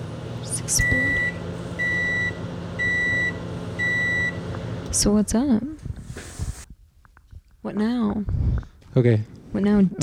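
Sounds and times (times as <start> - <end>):
microwave oven humming: 0.0 - 6.7
speech: 0.7 - 1.2, 5.0 - 6.3, 7.6 - 10.0.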